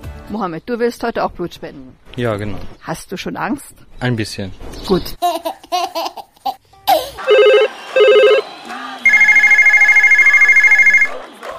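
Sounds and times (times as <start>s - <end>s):
speech: 0.3s - 6.2s
telephone ringing with incoming call: 7.2s - 11.2s.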